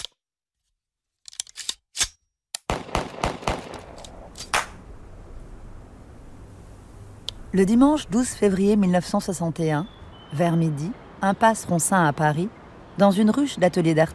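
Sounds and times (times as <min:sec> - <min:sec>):
carbine shots fired at plaster-covered paintings in Paris: 0:02.7 - 0:04.8
hiss: 0:03.2 - 0:09.1
speech: 0:07.6 - 0:14.1.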